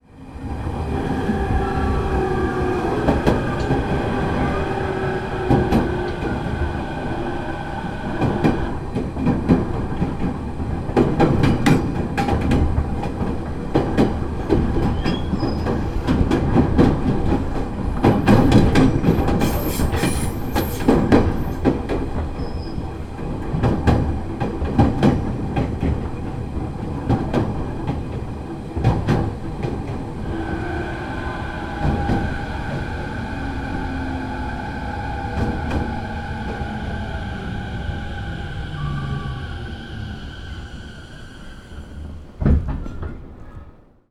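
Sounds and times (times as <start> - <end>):
train arriving at station heard from inside the train: 0.0 - 44.0.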